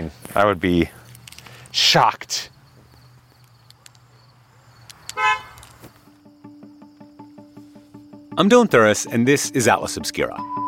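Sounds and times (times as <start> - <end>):
speech: 0.4 - 1.0, 1.8 - 2.5, 8.4 - 10.6
sharp clicks: 3.3 - 4.2, 4.8 - 6.1
car horn toot when locking car: 5.1 - 5.7.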